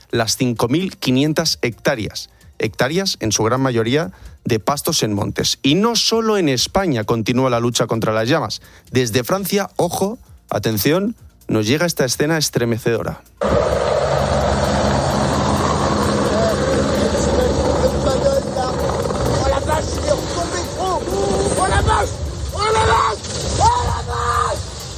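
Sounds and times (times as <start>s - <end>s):
speech: 0.1s - 14.1s
helicopter rotor and engine roar while crashing into a lake: 13.4s - 23.4s
several people shouting and yelling in alarm: 21.0s - 24.7s.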